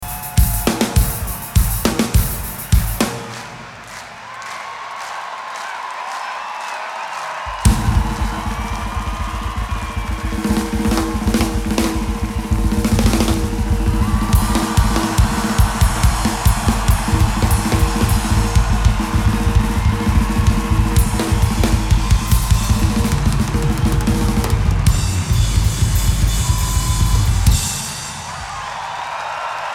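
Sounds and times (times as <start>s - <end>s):
drum solo: 0.0s - 3.7s, 7.5s - 28.7s.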